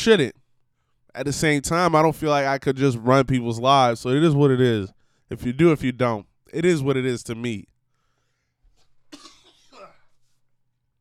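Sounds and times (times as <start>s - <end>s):
speech: 0.0s - 0.4s, 1.1s - 7.7s
harsh coughs from a person with COVID: 9.1s - 10.2s.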